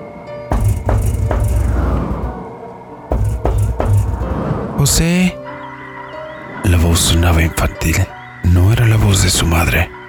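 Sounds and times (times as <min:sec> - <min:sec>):
loud heavy knocking on a door: 0:00.5 - 0:02.4, 0:03.1 - 0:04.4
speech: 0:04.8 - 0:05.4, 0:06.9 - 0:10.0.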